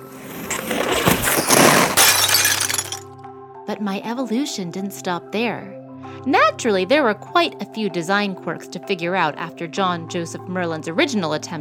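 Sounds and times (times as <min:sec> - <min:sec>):
large mirror crashing and shattering: 0:00.1 - 0:03.1
speech: 0:03.7 - 0:11.5.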